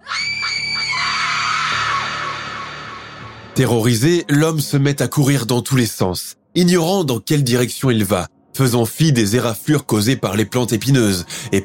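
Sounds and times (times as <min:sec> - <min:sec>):
loud piercing woman's scream: 0:00.0 - 0:03.3
speech: 0:03.6 - 0:11.6.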